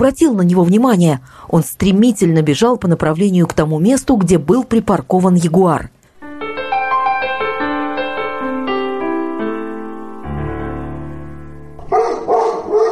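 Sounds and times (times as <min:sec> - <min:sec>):
speech: 0:00.0 - 0:06.0
descending run of sustained musical tones: 0:06.2 - 0:12.0
dog barking in short sharp bursts: 0:11.8 - 0:12.9.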